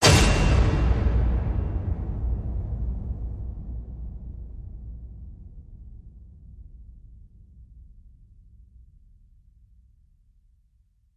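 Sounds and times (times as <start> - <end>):
big exploding flare hit: 0.0 - 5.6.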